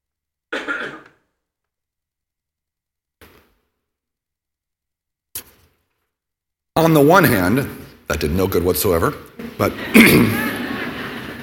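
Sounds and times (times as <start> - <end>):
person coughing: 0.5 - 1.3, 9.9 - 10.5
throat clearing: 0.5 - 1.3, 10.0 - 10.4
speech: 6.8 - 10.5
laughter: 9.6 - 11.4.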